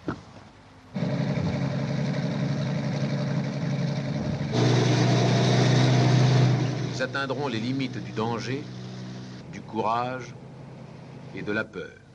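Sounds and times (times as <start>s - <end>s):
heavy truck engine rumbling in a film trailer: 0.0s - 12.1s
speech: 7.0s - 8.8s, 9.7s - 10.4s, 11.3s - 12.0s.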